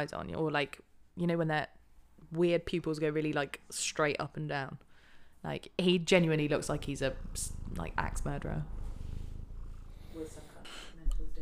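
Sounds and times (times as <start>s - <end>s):
speech: 0.0s - 8.8s
cat purring: 6.1s - 11.4s.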